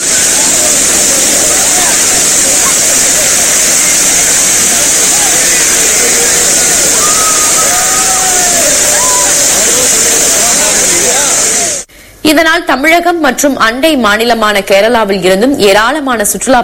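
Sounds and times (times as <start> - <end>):
waterfall roaring after rain in Kanyakumari district, Tamil Nadu, India: 0.0 - 11.9
speech: 12.3 - 16.6.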